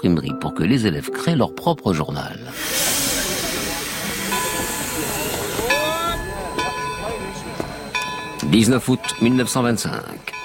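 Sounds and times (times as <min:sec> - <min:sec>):
speech: 0:00.0 - 0:02.8, 0:08.5 - 0:10.4
steam locomotive puffing at a railway station: 0:02.5 - 0:10.4.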